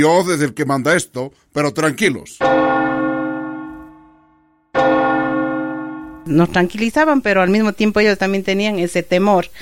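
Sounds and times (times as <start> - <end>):
speech: 0.0 - 2.8, 6.3 - 9.6
large church bell tolling: 2.4 - 6.6.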